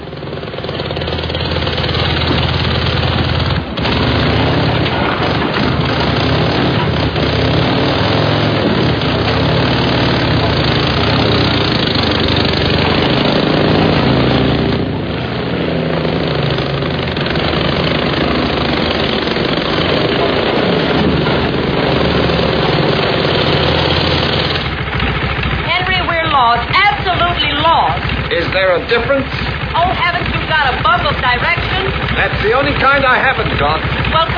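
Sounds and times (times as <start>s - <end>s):
motorcycle engine idling with low rumble: 0.0s - 34.3s.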